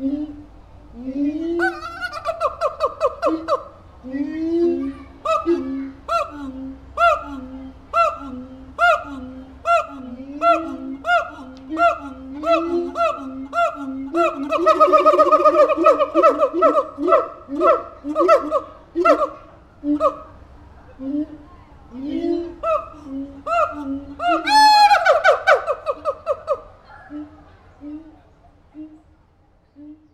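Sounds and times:
laughter: 1.5s - 19.4s
siamang gibbon hooting and barking: 1.5s - 28.2s.

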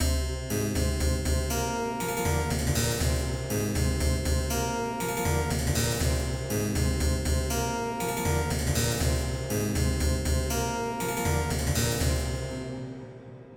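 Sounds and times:
Baroque intro music loop: 0.0s - 12.8s.

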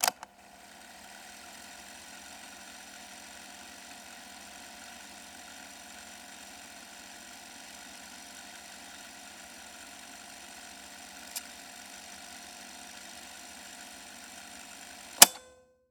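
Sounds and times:
cassette player switching on and off: 0.0s - 15.5s.

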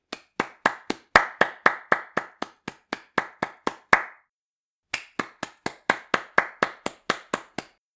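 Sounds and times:
one person applauding solo: 0.0s - 4.2s, 4.9s - 7.8s.

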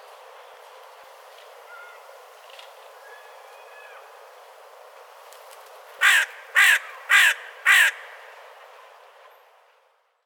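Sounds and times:
low background hiss: 0.0s - 10.2s
crow cawing outside a window: 6.0s - 8.2s.

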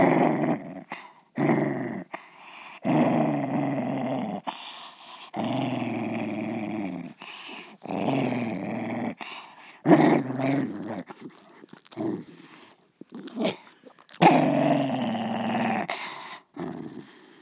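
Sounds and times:
dog growling: 0.0s - 17.3s.

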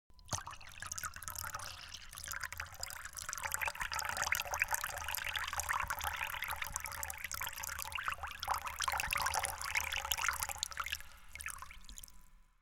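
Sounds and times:
water trickling: 0.1s - 12.4s.

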